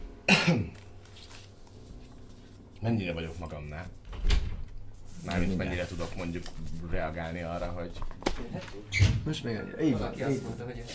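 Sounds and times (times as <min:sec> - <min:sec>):
person coughing harshly: 0:00.3 - 0:00.8
speech: 0:02.8 - 0:04.4, 0:05.2 - 0:10.9.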